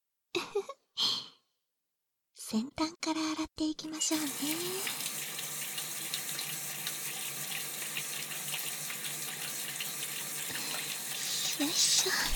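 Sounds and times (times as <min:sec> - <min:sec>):
speech: 0:02.5 - 0:05.1, 0:11.6 - 0:12.3
shower water running: 0:04.1 - 0:12.3.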